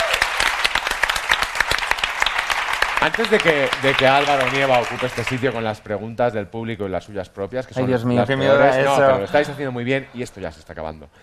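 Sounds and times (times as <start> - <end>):
audience applause at a live talk: 0.0 - 5.8
speech: 3.0 - 11.2.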